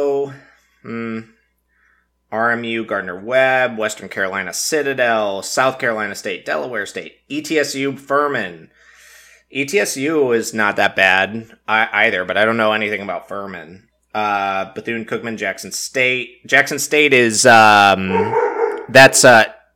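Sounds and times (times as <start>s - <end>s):
speech: 2.3s - 8.8s, 9.5s - 19.6s
dog barking excitedly: 18.1s - 19.1s.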